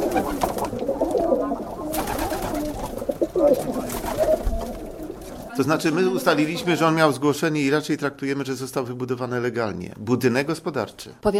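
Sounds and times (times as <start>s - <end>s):
pigeon wing flutters and rustling: 0.0s - 5.5s
pigeons cooing: 0.0s - 5.5s
speech: 0.2s - 0.4s, 5.6s - 11.3s.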